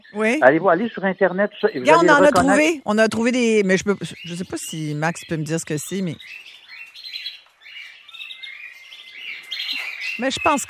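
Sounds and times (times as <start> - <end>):
speech: 0.1 - 6.5, 10.2 - 10.6
blackbird thrush singing far off: 3.4 - 10.6.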